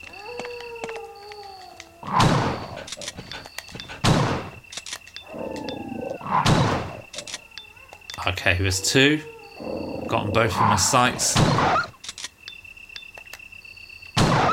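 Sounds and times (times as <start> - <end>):
horror video game ambience: 0.0 - 14.5
heavy booming shotgun blasts in a horror video game: 2.1 - 2.8, 4.0 - 4.6, 6.3 - 7.0, 11.3 - 11.9, 14.2 - 14.5
speech: 8.4 - 9.4, 10.1 - 11.9.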